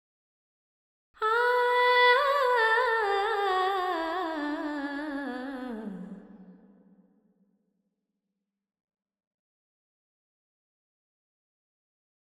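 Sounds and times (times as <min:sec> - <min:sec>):
female vocals with reverb in G at 100 bpm: 0:01.2 - 0:06.8.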